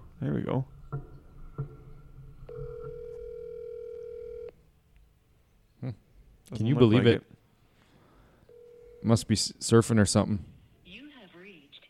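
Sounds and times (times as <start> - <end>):
speech: 0.2 - 1.1, 5.8 - 7.3, 9.0 - 10.5
phone ringback tone: 2.5 - 4.5, 8.5 - 9.1.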